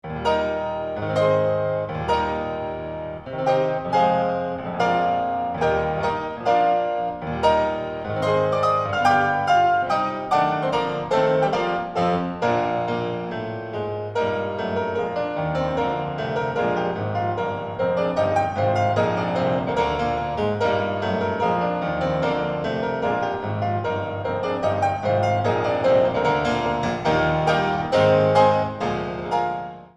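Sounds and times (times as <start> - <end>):
classical piano fantasia in C major: 0.0 - 29.9.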